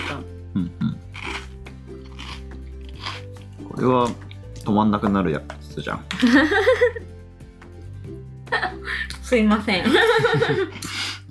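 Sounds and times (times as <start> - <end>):
speech: 0.1 - 0.8, 3.8 - 7.1, 9.3 - 11.3
crunching on a nori tempura snack: 0.9 - 4.1
laughter: 6.1 - 7.0, 9.8 - 10.9.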